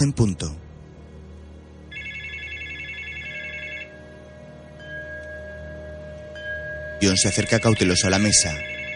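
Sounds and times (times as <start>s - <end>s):
speech: 0.0s - 0.6s, 7.0s - 8.8s
low steady hum: 0.0s - 8.9s
telephone ringing with a bright electronic trill: 1.9s - 6.3s, 6.9s - 8.9s.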